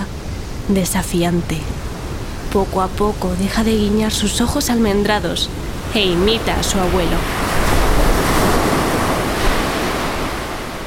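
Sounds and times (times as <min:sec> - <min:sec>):
rough sea waves crashing: 0:00.0 - 0:10.8
speech: 0:00.7 - 0:01.9, 0:02.5 - 0:07.9
wind buffeting the microphone: 0:01.8 - 0:10.8.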